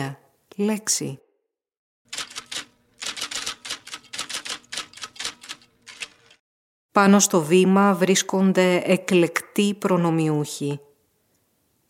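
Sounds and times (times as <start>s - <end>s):
speech: 0.0s - 1.2s, 7.0s - 10.9s
pens scratching: 2.2s - 6.4s.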